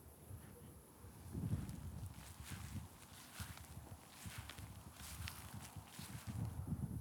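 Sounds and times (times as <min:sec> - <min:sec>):
footsteps walking through wet grass: 0:01.5 - 0:06.6.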